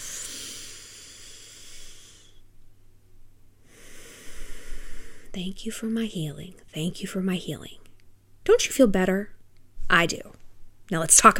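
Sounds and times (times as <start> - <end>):
deep breath drawn in during a guided relaxation and healing exercise: 0.0 - 2.4, 3.6 - 5.4
speech: 5.4 - 7.8, 8.5 - 11.3.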